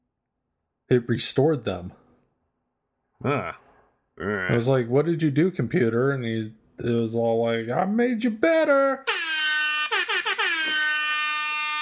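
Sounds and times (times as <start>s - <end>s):
speech: 0.9s - 2.0s, 3.2s - 3.6s, 4.2s - 9.1s
air horn sound effect from a phone app: 9.1s - 11.8s.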